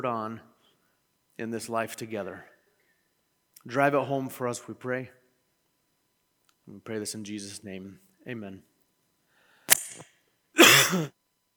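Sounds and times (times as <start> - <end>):
speech: 0.0 - 0.5, 1.4 - 2.5, 3.6 - 5.2, 6.7 - 8.7, 10.9 - 11.2
person coughing: 10.6 - 11.1.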